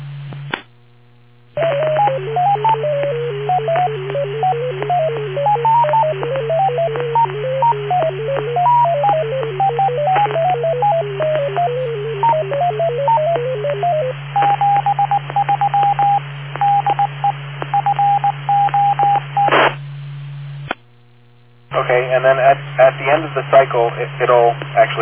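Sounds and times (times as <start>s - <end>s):
constant low electrical hum: 0.0s - 24.9s
radio fox-hunt transmitter beacon warbling tones on a handheld radio: 1.6s - 15.2s
radio fox-hunt transmitter beacon keyed beeps on a handheld radio: 1.6s - 17.1s, 17.7s - 19.5s.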